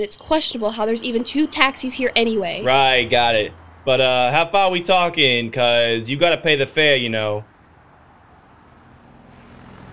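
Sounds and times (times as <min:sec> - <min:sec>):
speech: 0:00.0 - 0:07.5
road noise: 0:00.0 - 0:09.9
car engine driving off: 0:01.3 - 0:06.1, 0:06.8 - 0:09.9.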